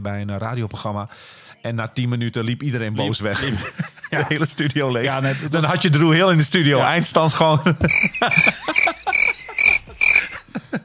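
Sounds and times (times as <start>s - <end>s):
speech: 0.0s - 8.9s
laughter: 3.0s - 5.9s, 6.6s - 10.8s
crickets chirping: 7.9s - 10.4s
low croaking pulses: 7.9s - 10.5s.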